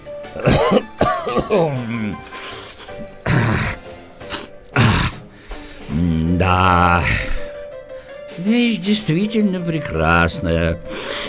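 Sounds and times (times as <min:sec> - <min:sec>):
speech: 0:00.4 - 0:00.8, 0:01.4 - 0:02.3, 0:06.4 - 0:07.3, 0:08.4 - 0:11.1
man imitating a throaty grunt: 0:01.4 - 0:02.3, 0:03.2 - 0:03.8, 0:04.7 - 0:05.2, 0:05.9 - 0:07.5.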